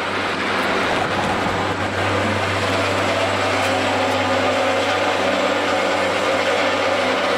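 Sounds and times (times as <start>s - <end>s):
cable car rumbling past on the street: 0.0s - 7.3s.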